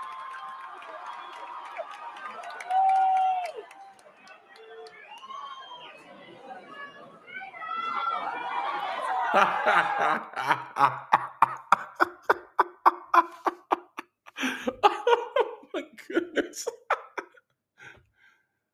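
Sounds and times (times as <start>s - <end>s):
lively crowd chattering and cheering: 0.0s - 13.5s
laughter: 7.9s - 17.4s
speech: 9.3s - 11.1s.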